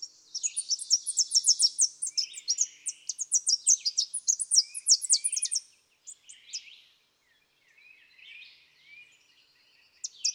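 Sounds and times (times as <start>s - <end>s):
Tennessee warbler song: 0.0s - 10.3s.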